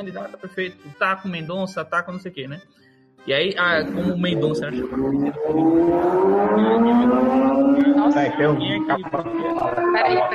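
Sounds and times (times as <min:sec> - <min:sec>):
speech: 0:00.0 - 0:10.3
motorcycle passing with loud droning engine: 0:03.6 - 0:10.3.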